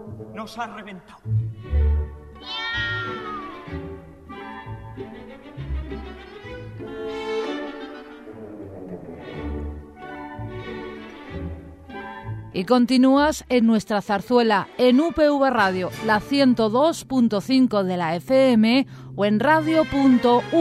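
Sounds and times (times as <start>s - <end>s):
speech: 0.2s - 1.8s, 12.6s - 20.5s
cat meowing in a zarzuela: 2.4s - 3.8s.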